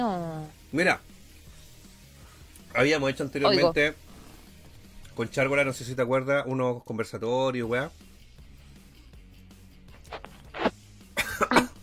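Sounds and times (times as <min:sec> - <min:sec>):
speech: 0:00.0 - 0:01.1, 0:02.8 - 0:04.0, 0:05.2 - 0:08.1
person coughing after choking on ginger: 0:11.2 - 0:11.8.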